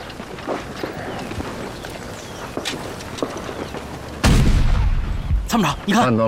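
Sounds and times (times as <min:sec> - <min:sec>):
rumbling battlefield backdrop: 0:00.0 - 0:06.2
artillery cannon fire: 0:04.2 - 0:05.5
loud blast: 0:04.2 - 0:05.5
speech: 0:05.5 - 0:06.2.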